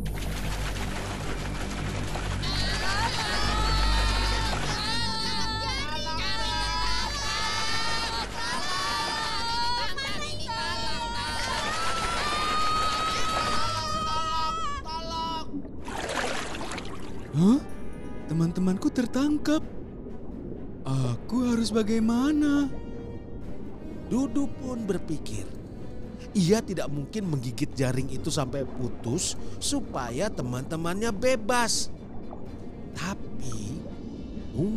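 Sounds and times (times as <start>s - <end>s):
steady watery rumble: 0.0s - 34.7s
several high-pitched voices shouting: 2.4s - 15.5s
speech: 18.6s - 19.8s, 21.6s - 22.9s, 24.1s - 25.6s, 26.3s - 32.0s, 34.6s - 34.7s.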